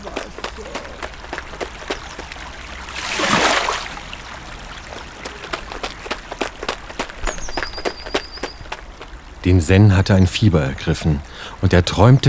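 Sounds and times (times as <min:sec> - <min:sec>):
quick footsteps: 0:00.0 - 0:03.4, 0:04.4 - 0:09.4
flowing stream water babbling: 0:00.0 - 0:12.2
speech: 0:09.4 - 0:12.2.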